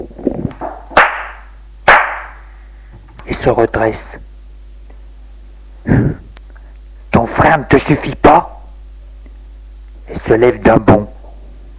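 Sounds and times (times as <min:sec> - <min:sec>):
slap in the face: 0:00.6 - 0:02.4
speech: 0:03.3 - 0:04.3, 0:05.9 - 0:06.2, 0:07.4 - 0:08.6, 0:10.2 - 0:11.2.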